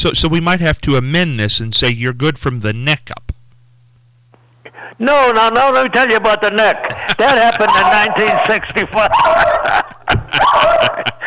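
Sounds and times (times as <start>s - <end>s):
speech: 0.0s - 3.3s, 4.8s - 11.2s
laughter: 4.7s - 11.2s
Havanese dog barking excitedly in sharp yips: 7.5s - 11.1s.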